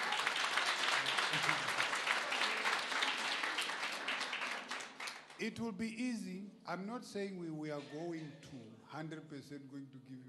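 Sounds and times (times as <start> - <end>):
crowd applauding: 0.0 - 5.4
speech: 5.4 - 10.2.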